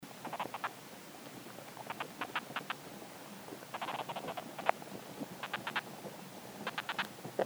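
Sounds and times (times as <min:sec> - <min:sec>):
garden ants communicating in soil with scratchy clicks: 0:00.1 - 0:07.4.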